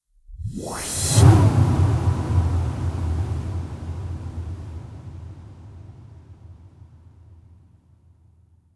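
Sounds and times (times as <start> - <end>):
whooshes: 0.3 - 3.0.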